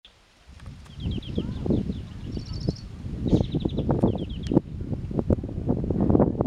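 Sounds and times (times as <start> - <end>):
loud gusty wind: 0.1 - 6.4
European greenfinch Chloris chloris twittering in fast trills: 0.9 - 4.6.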